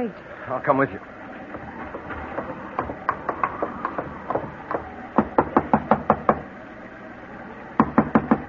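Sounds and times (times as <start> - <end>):
speech: 0.0 - 1.2
faint hum: 0.0 - 8.4
knocking on the wooden door of a home: 1.5 - 6.4, 7.8 - 8.4.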